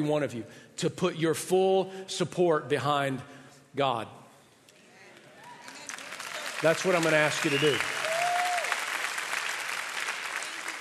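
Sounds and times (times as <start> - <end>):
speech: 0.0 - 4.2, 6.6 - 8.0
audience clapping: 5.1 - 10.7.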